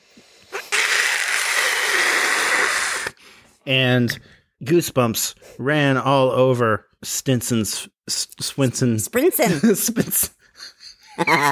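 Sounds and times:
loud harsh screeching: 0.5s - 3.2s
speech: 3.7s - 11.5s
laughter: 9.5s - 11.5s.

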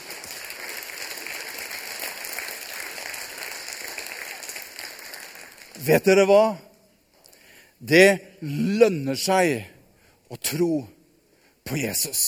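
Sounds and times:
audience applause: 0.0s - 5.8s
speech: 5.8s - 6.7s, 7.8s - 9.7s, 10.3s - 11.0s, 11.7s - 12.2s.

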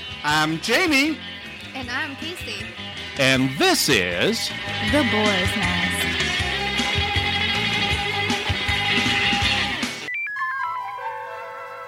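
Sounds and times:
busy music: 0.0s - 11.8s
speech: 0.2s - 5.9s
short clear electronic phone ringtone: 10.1s - 11.8s.

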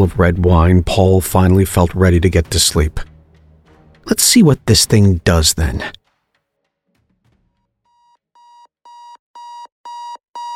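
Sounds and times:
speech: 0.0s - 3.1s, 4.0s - 6.0s
electronic alarm clock beeping: 7.9s - 10.5s.

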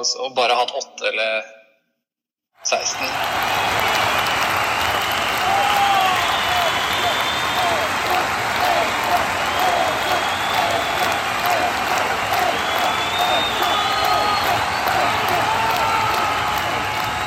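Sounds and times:
speech: 0.0s - 1.6s, 2.6s - 4.1s
sustained applause from a sizable crowd: 2.7s - 17.2s.

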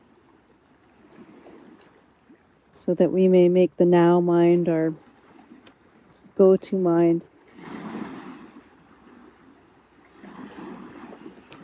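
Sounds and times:
lake water washing outdoors at daybreak: 0.0s - 11.6s
wind outdoors at daybreak: 0.0s - 11.6s
speech: 2.8s - 5.1s, 6.4s - 7.3s.

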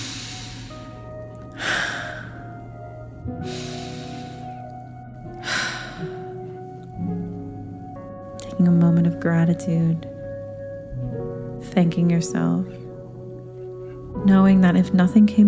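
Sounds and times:
slow breaths in through the nose during guided breathing practice: 0.0s - 2.5s, 3.4s - 4.7s
steady quiet sustained tonal drone: 0.0s - 15.1s
speech: 8.6s - 10.1s, 11.8s - 12.8s, 14.2s - 15.4s.

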